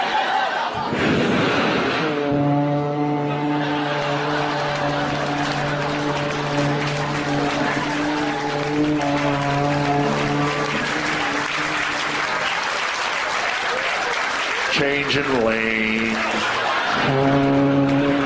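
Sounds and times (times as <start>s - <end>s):
laughter: 0.0s - 1.2s, 2.9s - 18.2s
crowd applause: 0.0s - 18.2s
1966 Cadillac Coupe de Ville car horn honking: 2.1s - 12.1s
speech: 15.1s - 18.0s.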